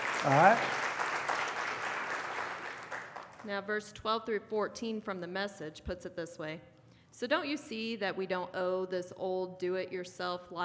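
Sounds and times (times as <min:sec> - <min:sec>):
audience applauding: 0:00.0 - 0:03.4
speech: 0:00.2 - 0:00.8, 0:03.4 - 0:10.6.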